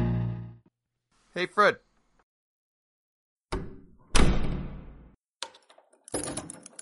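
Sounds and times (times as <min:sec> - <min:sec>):
speech: 0:01.6 - 0:01.8
door slamming shut: 0:03.5 - 0:05.0
lock or latch being turned: 0:05.4 - 0:06.8.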